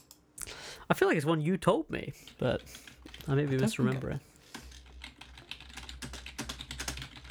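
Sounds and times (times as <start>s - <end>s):
rapid typing on a computer keyboard: 0.0s - 0.2s, 2.8s - 7.3s
speech: 0.9s - 4.3s.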